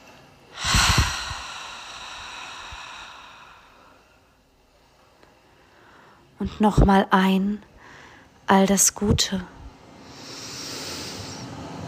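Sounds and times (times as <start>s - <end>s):
breathy exhale during a guided relaxation breathing exercise: 0.5s - 4.4s, 10.0s - 11.6s
speech: 6.4s - 7.7s, 8.5s - 9.6s.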